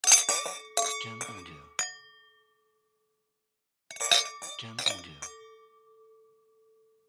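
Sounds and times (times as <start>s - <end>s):
wine glasses: 0.1s - 1.7s, 3.9s - 5.6s.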